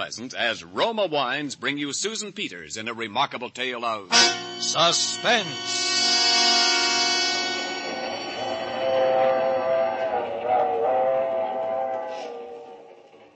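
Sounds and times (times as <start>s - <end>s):
speech: 0.0s - 6.2s
train whistle blast: 4.1s - 12.9s.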